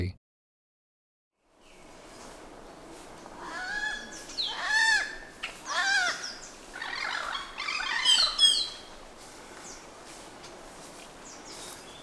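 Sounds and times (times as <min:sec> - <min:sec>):
bird calls: 0:03.4 - 0:08.9.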